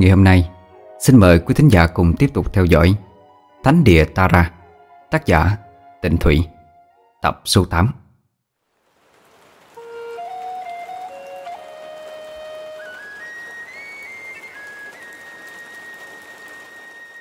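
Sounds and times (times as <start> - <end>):
speech: 0.0 - 6.5, 7.2 - 8.0
heavy rain: 8.6 - 17.2
thin whistle-like tonal melody: 9.8 - 17.2.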